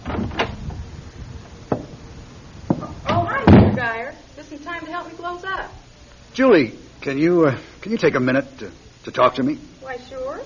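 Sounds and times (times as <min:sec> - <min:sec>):
bookshop door opening and closing: 0:00.0 - 0:00.7, 0:02.7 - 0:03.9
speech: 0:03.8 - 0:10.4.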